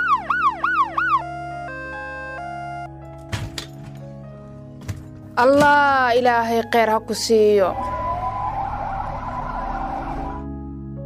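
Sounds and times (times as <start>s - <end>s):
ambulance siren wailing: 0.0s - 2.9s, 7.7s - 10.6s
speech: 5.4s - 7.9s.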